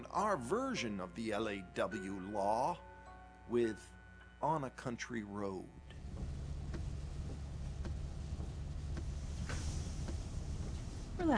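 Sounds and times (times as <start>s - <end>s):
speech: 0.0s - 2.9s, 3.5s - 6.0s
cars idling in stopped traffic: 5.9s - 11.3s.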